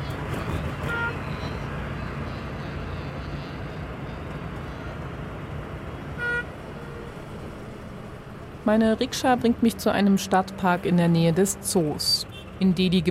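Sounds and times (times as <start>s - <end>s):
city street traffic drone: 0.0s - 13.0s
car horn toots: 0.8s - 1.3s, 6.2s - 6.5s
speech: 8.7s - 13.0s.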